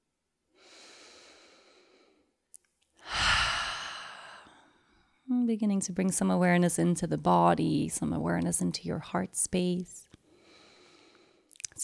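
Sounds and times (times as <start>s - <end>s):
deep breath in and out during a guided relaxation: 0.6s - 2.4s, 3.0s - 5.3s, 10.2s - 11.5s
speech: 5.5s - 10.1s.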